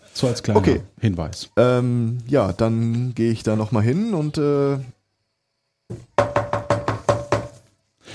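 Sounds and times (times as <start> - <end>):
speech: 0.2 - 5.0
knocking on a door: 5.9 - 7.6.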